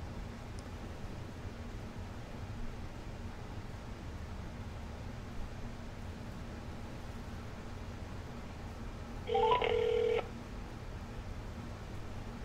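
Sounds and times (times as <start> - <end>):
steady low hum and hiss: 0.0 - 12.4
phone dialing with stepped electronic beeps: 9.3 - 10.3.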